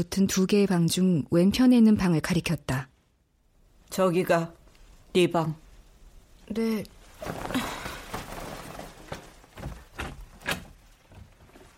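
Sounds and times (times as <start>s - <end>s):
speech: 0.0s - 2.9s, 3.9s - 5.6s, 6.5s - 7.7s
room door being opened with handle and frame rattling: 9.6s - 11.5s.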